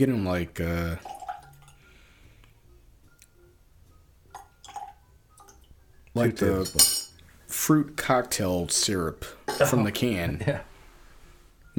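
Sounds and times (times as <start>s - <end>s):
speech: 0.0s - 1.2s, 6.2s - 7.0s, 7.6s - 10.7s
water dripping into a glass of high-proof malt whiskey: 1.0s - 1.9s, 4.2s - 6.2s
light clinks of a whiskey glass: 6.6s - 7.2s.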